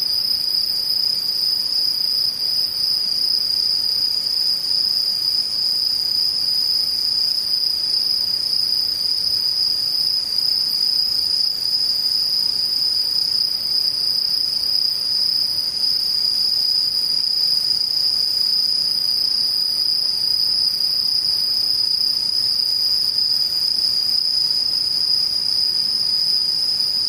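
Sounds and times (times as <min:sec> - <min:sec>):
insects chirring in a dense chorus: 0:00.0 - 0:27.0.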